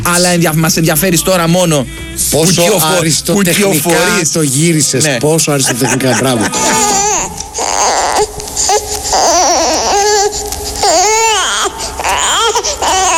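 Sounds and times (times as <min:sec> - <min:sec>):
speech: 0:00.1 - 0:08.8
laughter: 0:05.3 - 0:07.6
baby crying: 0:05.8 - 0:13.1.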